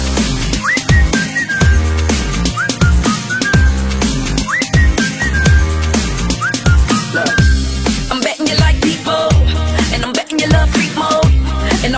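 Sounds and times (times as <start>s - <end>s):
loud thumping beat and deep bass: 0.0s - 11.8s
bright whistled melody in a song: 0.4s - 7.8s.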